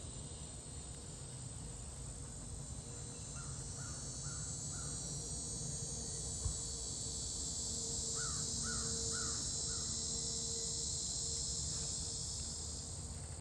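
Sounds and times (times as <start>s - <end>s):
cicada calling: 0.0s - 13.3s.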